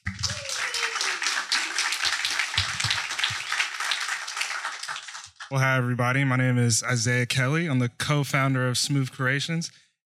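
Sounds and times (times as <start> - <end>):
audience applause at a fellowship demo day: 0.0 - 5.5
speech: 5.5 - 10.0.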